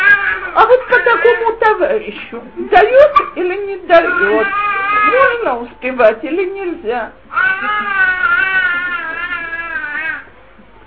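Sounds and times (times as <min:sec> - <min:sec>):
baby screaming and crying: 0:00.0 - 0:00.6, 0:04.0 - 0:05.4, 0:07.3 - 0:10.3
speech: 0:00.6 - 0:08.1.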